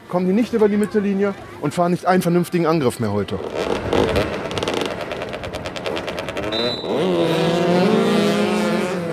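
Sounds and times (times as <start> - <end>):
speech: 0.1 - 3.9
motorcycle engines revving and roaring in a motoball match on an asphalt football pitch: 3.4 - 9.1.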